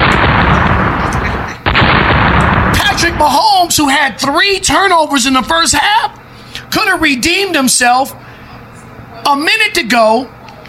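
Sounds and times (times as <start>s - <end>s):
loud dense explosion sound effect with crackling debris: 0.0s - 3.8s
speech: 3.2s - 8.3s, 9.3s - 10.4s.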